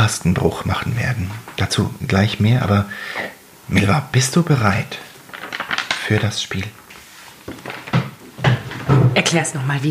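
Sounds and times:
speech: 0.0s - 5.1s, 6.1s - 6.8s, 8.9s - 9.9s
chair creaking as someone shifts around: 4.9s - 9.3s.

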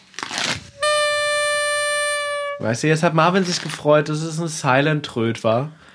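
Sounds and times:
papery crinkle: 0.0s - 0.8s, 3.4s - 3.8s
party horn blown in a flat buzzy tone: 0.7s - 2.8s
speech: 2.6s - 5.9s.

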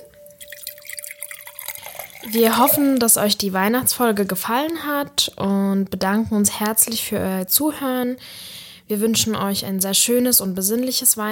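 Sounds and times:
mulled wine being poured into cups: 0.0s - 4.3s
speech: 2.2s - 11.3s.

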